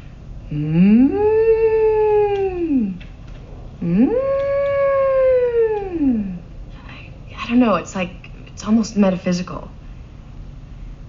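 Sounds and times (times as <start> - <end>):
speech: 0.5 - 1.6, 3.8 - 4.3, 7.6 - 9.8
voice imitating whale song with long moaning calls: 0.5 - 3.0, 3.8 - 6.5.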